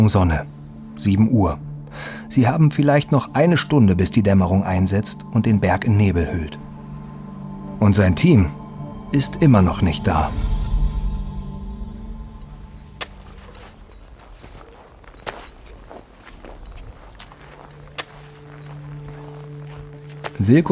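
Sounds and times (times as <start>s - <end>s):
speech: 0.0s - 6.6s, 7.8s - 10.6s, 20.4s - 20.6s
climber's slow heavy footsteps crunching over snow or ice: 12.4s - 20.6s.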